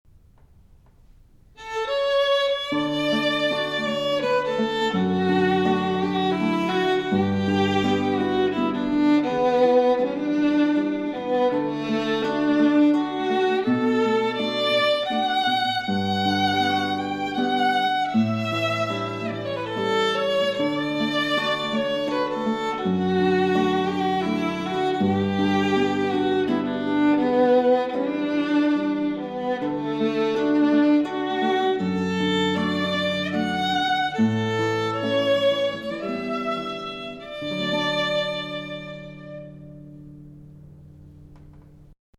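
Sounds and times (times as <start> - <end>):
guitar: 0.1 - 42.0
violin: 0.2 - 42.0.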